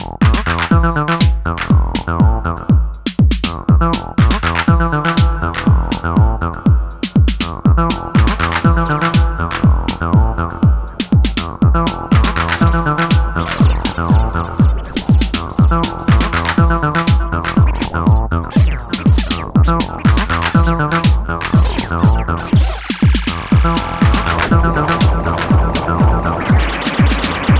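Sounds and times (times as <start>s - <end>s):
Roland T-8 beat machine beat with reverb and delay: 0.0s - 27.5s.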